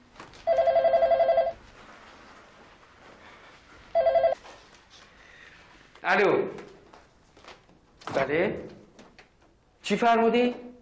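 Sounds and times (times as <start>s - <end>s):
telephone ringing with rapid bell trills: 0.4s - 1.6s, 3.9s - 4.4s
speech: 6.1s - 6.6s, 8.2s - 8.8s, 9.9s - 10.7s.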